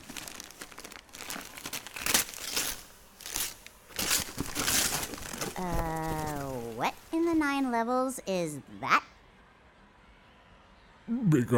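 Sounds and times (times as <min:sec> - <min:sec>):
wrapping paper being torn off a wrapped item: 0:00.0 - 0:07.2
speech: 0:05.6 - 0:06.0, 0:06.8 - 0:09.1, 0:11.2 - 0:11.5.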